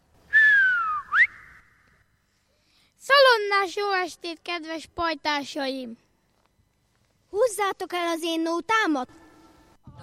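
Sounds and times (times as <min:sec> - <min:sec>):
shepherd's whistle: 0:00.3 - 0:01.9
speech: 0:03.6 - 0:06.0, 0:07.4 - 0:09.2.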